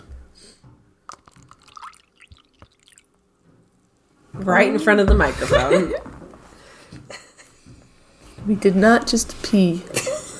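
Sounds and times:
lemonade poured into a glass: 1.1 - 3.2
speech: 4.4 - 6.1, 8.5 - 10.0
laughter: 4.8 - 6.1.

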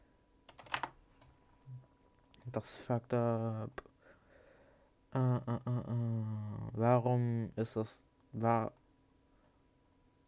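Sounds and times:
soft typing on a computer keyboard with a failing B key: 0.5 - 1.0
speech: 2.5 - 3.9, 5.1 - 8.8.

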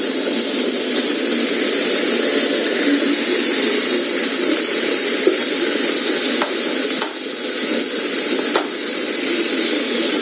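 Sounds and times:
onion sizzling as it fries in a pan: 0.0 - 10.2
faint pops and crackles of frying onion: 3.9 - 9.0.

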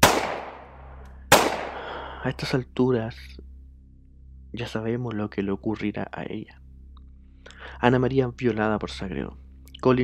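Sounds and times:
gunshots with decay: 0.0 - 1.9
speech: 2.2 - 3.5, 4.5 - 6.6, 7.8 - 10.0.

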